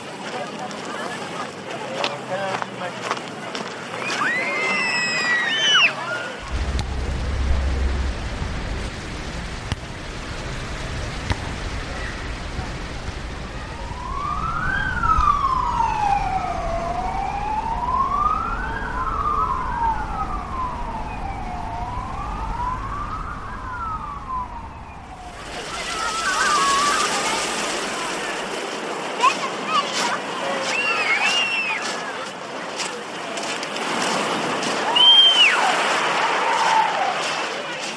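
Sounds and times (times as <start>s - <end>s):
street noise: 0.0s - 37.9s
ambulance siren wailing: 13.5s - 27.3s.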